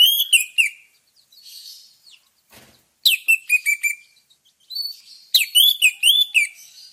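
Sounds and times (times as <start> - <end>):
orange-headed thrush singing whistles and warbles: 0.0 - 0.9, 3.0 - 6.9.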